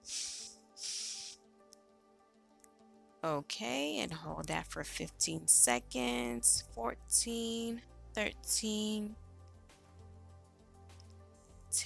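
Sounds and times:
deep breath drawn in through the nose during a slow breathing exercise: 0.0s - 1.4s
speech: 3.2s - 9.2s.

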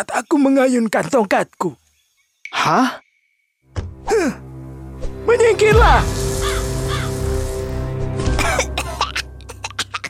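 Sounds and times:
speech: 0.0s - 1.8s, 2.6s - 3.0s, 5.3s - 6.2s
steady low drone: 4.4s - 10.0s
crow giving harsh raspy caws: 6.0s - 7.6s.

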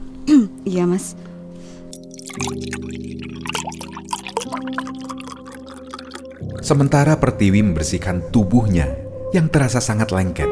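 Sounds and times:
speech: 0.3s - 1.3s, 2.4s - 5.4s, 6.5s - 10.5s
water poured while making a ginger drink: 1.9s - 7.2s.

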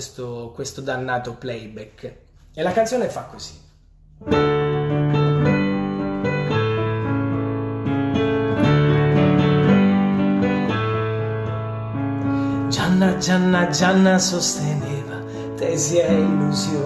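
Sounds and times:
speech: 0.0s - 3.6s, 4.2s - 4.6s, 13.2s - 15.0s, 15.6s - 16.8s
acoustic piano playing song intro chords live: 3.9s - 16.8s.

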